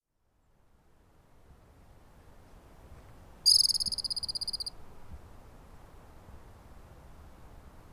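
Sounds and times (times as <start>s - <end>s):
soft background hiss: 0.0s - 7.9s
squirrel call trill: 3.5s - 4.7s.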